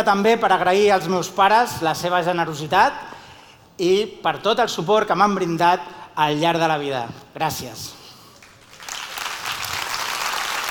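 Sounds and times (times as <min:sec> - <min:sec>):
speech: 0:00.0 - 0:03.1, 0:03.8 - 0:08.0
audience applauding: 0:08.4 - 0:10.7.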